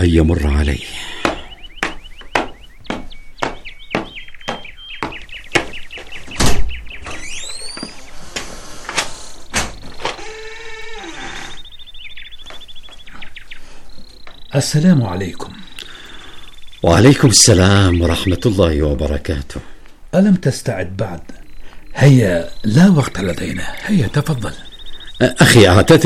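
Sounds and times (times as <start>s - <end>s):
speech: 0.0s - 1.2s, 14.6s - 15.5s, 16.8s - 21.4s, 22.0s - 24.6s, 25.2s - 26.0s
squeaky creaking door hinges: 6.4s - 11.7s.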